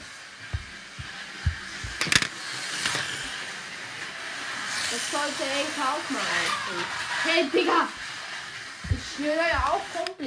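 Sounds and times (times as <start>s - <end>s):
toy slot cars racing around a track: 0.0s - 10.2s
speech: 5.0s - 8.1s, 9.2s - 10.2s.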